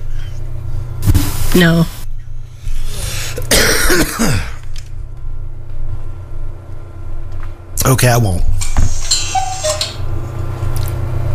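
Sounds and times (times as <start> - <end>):
low hum: 0.0 - 11.3
speech: 1.6 - 2.0, 8.0 - 8.6
cuckoo clock call marking the half hour: 9.0 - 10.0.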